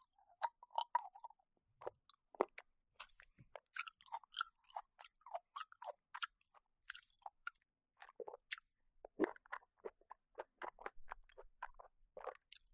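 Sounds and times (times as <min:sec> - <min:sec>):
wet chewing of an orange: 0:00.3 - 0:12.7.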